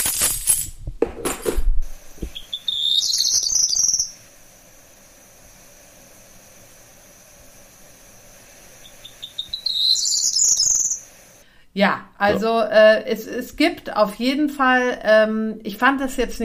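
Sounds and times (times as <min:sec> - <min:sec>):
brief rustling noise: 0:00.0 - 0:02.5
high-pitched twittering bird call: 0:02.2 - 0:04.2, 0:08.8 - 0:11.1
speech: 0:11.8 - 0:16.4.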